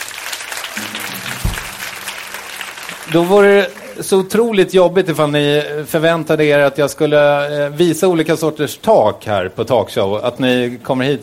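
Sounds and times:
audience clapping: 0.0 - 4.4
speech: 0.8 - 1.7, 3.1 - 11.2
low thud: 1.1 - 2.1.

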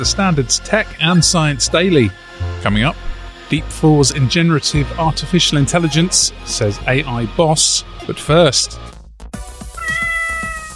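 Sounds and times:
speech: 0.0 - 8.9
domestic cat meowing: 9.8 - 10.7.

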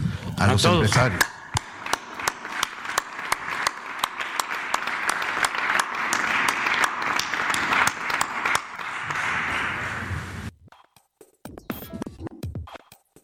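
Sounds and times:
speech: 0.4 - 1.3
crowd applause: 0.7 - 10.4.

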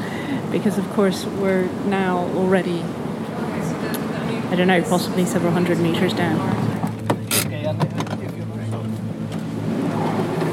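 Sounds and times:
speech: 0.5 - 3.1, 4.5 - 6.6
car engine droning while driving down an underground tunnel incline: 1.3 - 10.5
brief knocks and rattles: 6.8 - 8.4.

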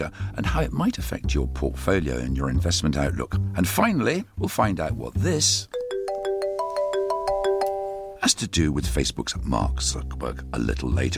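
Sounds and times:
speech: 0.0 - 5.8, 8.2 - 11.1
bright electronic phone ringtone: 5.7 - 8.2.

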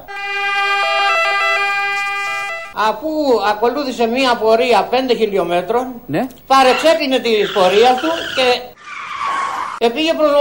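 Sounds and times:
ambulance siren wailing in two-tone pattern: 0.0 - 2.8, 6.7 - 9.8
speech: 2.8 - 8.7, 9.8 - 10.3.

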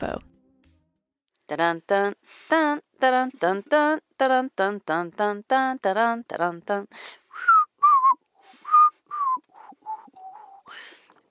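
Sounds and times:
speech: 0.0 - 0.3, 1.5 - 7.5
person whistling a short melodic tune: 7.3 - 10.8.

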